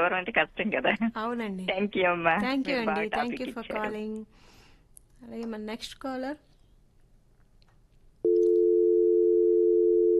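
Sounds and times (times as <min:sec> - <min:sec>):
speech: 0:00.0 - 0:04.6, 0:05.2 - 0:06.5
steady loud electronic telephone tone after a dropped phone call: 0:08.3 - 0:10.1.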